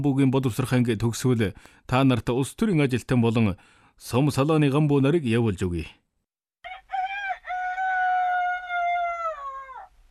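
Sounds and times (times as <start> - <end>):
speech: 0.0 - 6.0
rooster crowing: 6.6 - 10.0.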